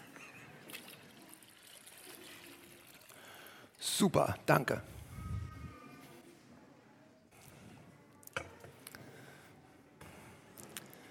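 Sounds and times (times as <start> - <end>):
water pouring into a container: 0.6 - 4.0
speech: 4.0 - 5.0.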